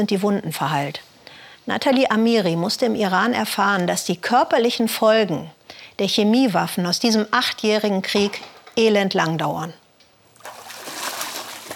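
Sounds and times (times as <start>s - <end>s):
speech: 0.0s - 9.8s
water splashing as a man washes himself: 10.3s - 11.7s.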